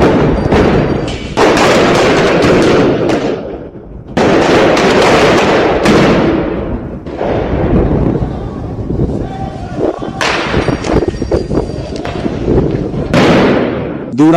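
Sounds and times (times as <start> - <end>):
firecracker and dynamite blasts at street protest: 0.0 - 14.1
crowd shouting outdoors at street protest: 7.8 - 12.6.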